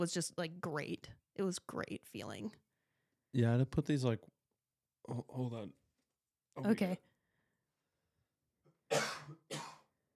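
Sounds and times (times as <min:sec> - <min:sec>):
speech: 0:00.0 - 0:02.6, 0:03.3 - 0:04.4, 0:05.0 - 0:05.8, 0:06.6 - 0:07.1
person coughing from a bad tickle in the throat: 0:08.9 - 0:09.9.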